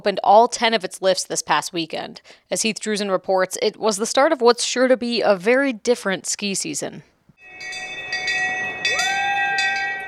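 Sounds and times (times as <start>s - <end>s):
speech: 0.0s - 7.9s
cowbell rung by hand to open the ski season at a ski resort: 7.4s - 10.0s.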